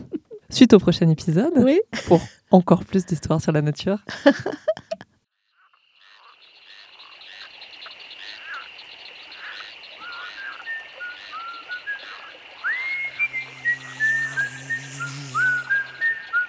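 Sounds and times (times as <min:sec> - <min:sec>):
laughter: 0:00.0 - 0:00.5, 0:02.0 - 0:02.4, 0:04.0 - 0:05.0
speech: 0:00.5 - 0:04.7
toad croaking: 0:05.6 - 0:11.3
thin rising whistle-like notes: 0:10.0 - 0:16.4.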